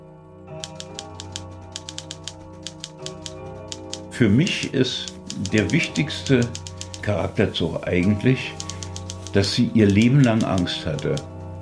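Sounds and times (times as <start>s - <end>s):
typewriter keys clattering: 0.6s - 4.0s, 5.0s - 7.1s, 8.6s - 11.6s
speech: 4.2s - 8.6s, 9.3s - 11.3s.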